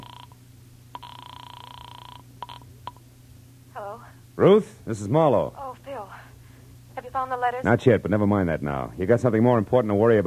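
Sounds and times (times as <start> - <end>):
steady buzzing telephone tone: 0.0 - 3.0
speech: 3.8 - 5.6, 7.1 - 10.2.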